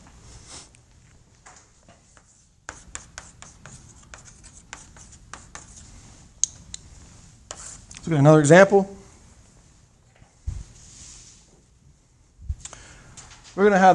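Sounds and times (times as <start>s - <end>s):
lines being drawn on a board: 2.1s - 6.0s, 7.5s - 7.9s
speech: 8.1s - 9.0s, 13.6s - 13.9s.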